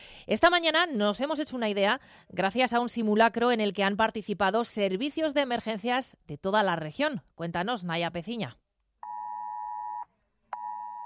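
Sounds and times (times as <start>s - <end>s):
speech: 0.3s - 8.6s
mobile phone emergency alert tones during a dam-break flood drill: 10.6s - 11.0s.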